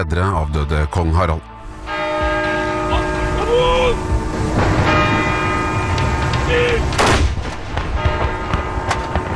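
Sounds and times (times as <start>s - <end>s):
speech: 0.0s - 1.5s, 6.5s - 6.8s
low rumbling background: 1.5s - 7.8s
church bells ringing: 1.6s - 7.2s, 7.9s - 9.3s.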